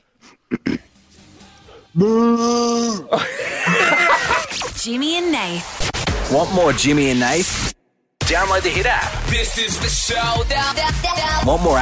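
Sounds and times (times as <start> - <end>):
short vocal sounds: 1.8 - 3.2
man imitating a cow's moo: 2.0 - 3.2
speech: 2.0 - 3.5, 4.8 - 11.7
laughter: 3.1 - 4.8.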